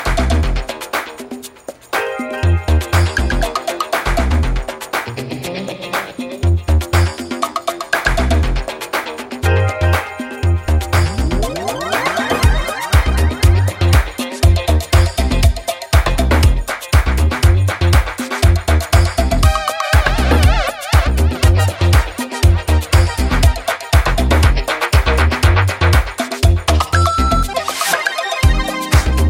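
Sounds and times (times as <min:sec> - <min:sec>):
DJ-friendly instrumental music: 0:00.0 - 0:29.2.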